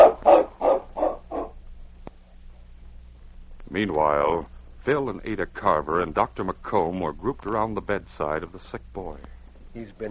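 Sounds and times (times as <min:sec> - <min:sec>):
sled dog team barking: 0:00.0 - 0:01.6
faint low hum: 0:00.0 - 0:10.0
speech: 0:03.8 - 0:10.0.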